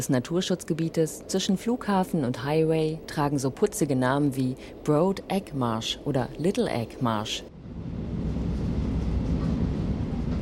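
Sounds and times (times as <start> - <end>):
speech: 0.0 - 7.9
train rumbling along a causeway: 7.5 - 10.4.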